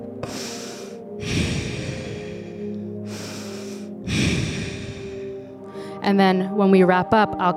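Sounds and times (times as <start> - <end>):
deep human breathing: 0.0 - 6.0
speech: 6.0 - 7.5.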